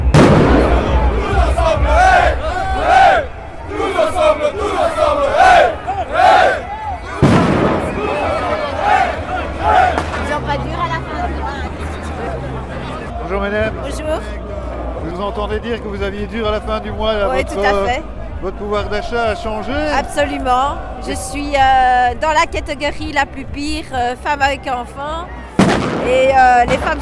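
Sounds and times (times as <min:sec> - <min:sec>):
crowd shouting and chanting at a trade-union street demonstration over purchasing power: 0:00.0 - 0:27.0
speech: 0:16.8 - 0:27.0.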